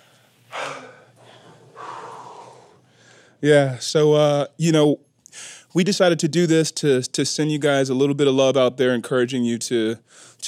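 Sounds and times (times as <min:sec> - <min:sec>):
heavy breathing catching breath after exertion: 0:00.0 - 0:03.4, 0:05.3 - 0:05.7
speech: 0:03.4 - 0:10.4.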